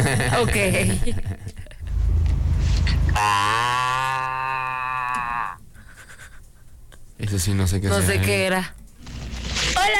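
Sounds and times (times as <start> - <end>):
speech: 0.1 - 1.6, 3.2 - 3.8, 7.2 - 8.8, 9.8 - 9.9
brief low rumble: 1.7 - 3.6
person imitating a goat's bleat: 3.2 - 5.6.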